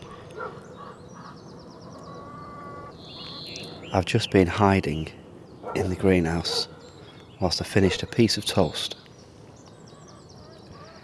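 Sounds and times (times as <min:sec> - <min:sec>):
chickens squawking and clucking: 0:00.0 - 0:03.6
outdoor noise: 0:00.0 - 0:11.0
speech: 0:03.9 - 0:06.7, 0:07.4 - 0:09.0.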